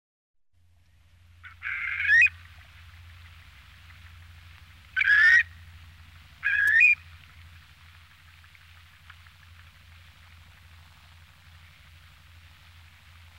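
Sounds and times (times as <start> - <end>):
low background hum: 0.6 - 13.3
Asian dowitcher Limnodromus semipalmatus nasal yelping calls: 1.4 - 2.8, 4.9 - 5.6, 6.4 - 7.1.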